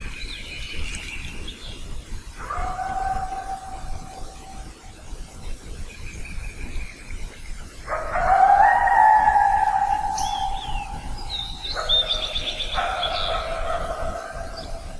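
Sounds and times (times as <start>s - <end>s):
coyote: 2.4s - 4.7s, 7.8s - 14.9s.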